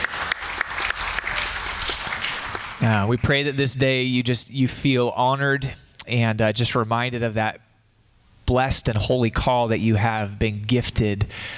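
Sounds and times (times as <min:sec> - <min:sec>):
audience applause: 0:00.0 - 0:03.4
speech: 0:02.8 - 0:07.6, 0:08.5 - 0:11.5.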